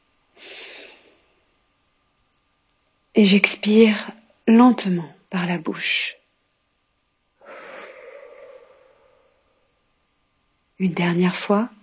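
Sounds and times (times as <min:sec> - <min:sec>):
slow inhale through the nose during a guided breathing exercise: 0:00.4 - 0:01.2, 0:07.4 - 0:09.4
speech: 0:03.2 - 0:06.2, 0:10.8 - 0:11.8.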